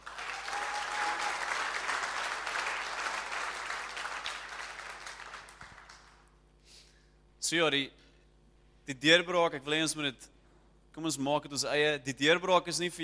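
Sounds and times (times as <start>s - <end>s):
audience applauding: 0.0s - 6.3s
speech: 7.5s - 8.0s, 8.9s - 13.0s.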